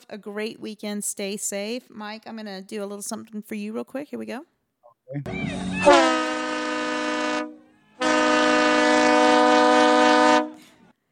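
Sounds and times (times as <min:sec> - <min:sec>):
speech: 0:00.1 - 0:04.5, 0:05.1 - 0:06.2
train horn blasts: 0:05.8 - 0:10.6.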